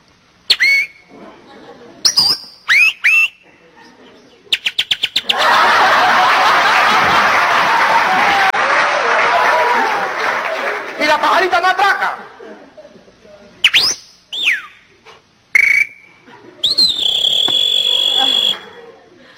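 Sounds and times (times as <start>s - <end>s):
person whistling bird-like calls imitating a flirting bird: 0.5s - 1.0s, 2.0s - 3.4s, 4.5s - 5.3s, 13.6s - 14.8s, 15.6s - 18.6s
laughter: 1.0s - 2.2s, 3.4s - 4.6s, 5.2s - 11.0s, 11.9s - 13.5s, 16.0s - 19.3s
crowd applauding: 5.4s - 11.4s.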